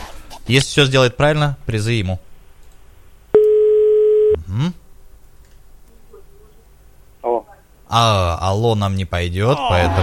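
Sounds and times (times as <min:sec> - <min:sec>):
speech: 0:00.5 - 0:02.2, 0:04.5 - 0:04.8, 0:07.9 - 0:10.0
telephone ringing out while dialing a caller: 0:03.4 - 0:04.4.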